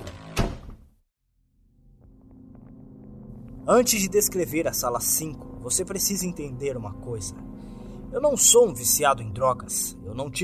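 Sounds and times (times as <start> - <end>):
door banging open: 0.0 - 0.9
speech: 3.7 - 10.4.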